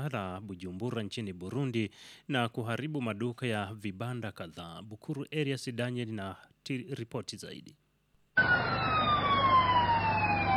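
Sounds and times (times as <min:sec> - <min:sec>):
speech: 0:00.0 - 0:07.8
fire engine siren wailing at a large market fire in Bujumbura, Burundi: 0:08.4 - 0:10.5.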